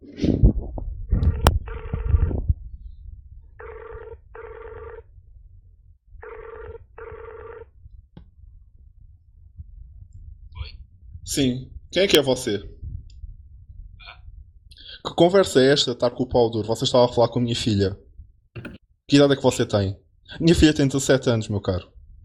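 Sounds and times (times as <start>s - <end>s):
outgoing telephone call double-ring tone: 1.3s - 2.4s, 3.6s - 5.1s, 6.2s - 7.7s
speech: 11.4s - 12.8s, 15.2s - 18.0s, 19.1s - 22.0s
clattering handling noise: 18.6s - 18.8s.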